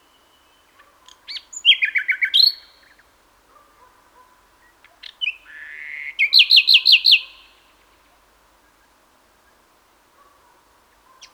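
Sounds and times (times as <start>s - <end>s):
common nightingale Luscinia megarhynchos singing: 0.0s - 3.1s, 4.6s - 8.0s.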